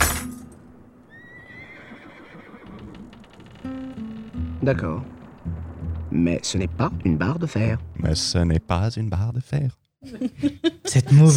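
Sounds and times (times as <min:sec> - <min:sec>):
horse neighing: 0:01.1 - 0:03.8
horse hoof clops: 0:02.3 - 0:08.2
speech: 0:04.6 - 0:11.3
laughter: 0:10.0 - 0:11.3.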